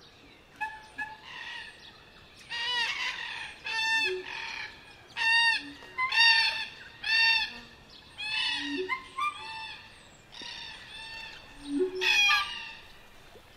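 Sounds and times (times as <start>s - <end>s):
crows squawking outdoors: 2.5s - 13.0s.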